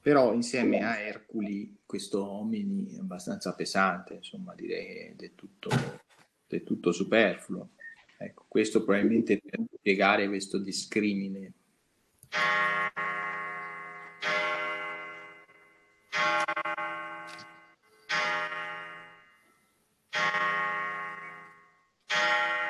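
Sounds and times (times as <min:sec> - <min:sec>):
speech: 0:00.1 - 0:11.6, 0:12.3 - 0:13.1
pendulum clock at home chiming bell strikes: 0:12.3 - 0:19.4, 0:20.1 - 0:22.6.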